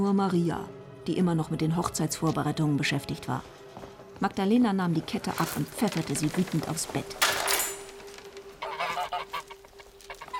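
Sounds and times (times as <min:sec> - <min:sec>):
speech: 0:00.0 - 0:03.6, 0:04.2 - 0:07.4
geese honking driven out of a farmyard: 0:08.4 - 0:10.3.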